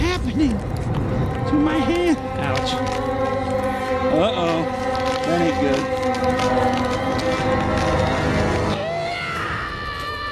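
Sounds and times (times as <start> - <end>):
speech: 0.2 - 0.9, 1.5 - 3.1, 4.1 - 7.9
several voices screaming in a movie scene: 7.9 - 10.3.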